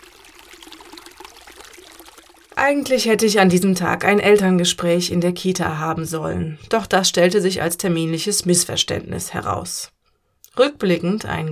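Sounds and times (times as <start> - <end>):
Ohm river water flowing in Germany: 0.0 - 2.6
speech: 2.6 - 10.0, 10.6 - 11.5.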